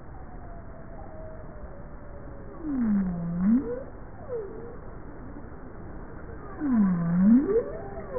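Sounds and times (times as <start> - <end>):
bowhead whale calls: 2.6 - 4.8, 6.4 - 8.1.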